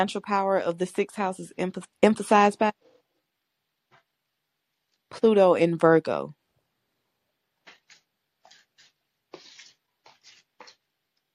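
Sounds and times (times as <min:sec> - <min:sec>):
speech: 0:00.0 - 0:02.9, 0:05.1 - 0:06.4
deck of cards being shuffled: 0:07.6 - 0:10.8.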